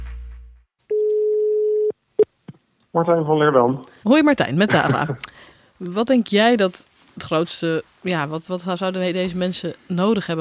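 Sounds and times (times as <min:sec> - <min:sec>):
telephone ringing tone while calling a church minister: 0:00.9 - 0:01.9
speech: 0:02.9 - 0:10.4.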